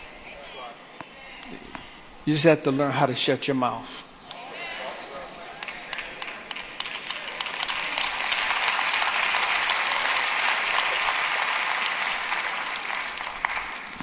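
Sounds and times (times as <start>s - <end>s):
speech: 2.3s - 4.1s
audience clapping: 4.3s - 14.0s.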